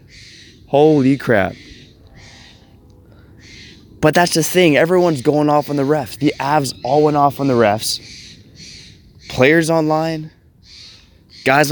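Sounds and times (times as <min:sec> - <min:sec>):
harsh crow caws in the morning: 0:00.0 - 0:04.0, 0:06.7 - 0:09.6, 0:10.6 - 0:11.6
speech: 0:00.7 - 0:01.7, 0:04.0 - 0:08.2, 0:09.4 - 0:10.4, 0:11.4 - 0:11.6.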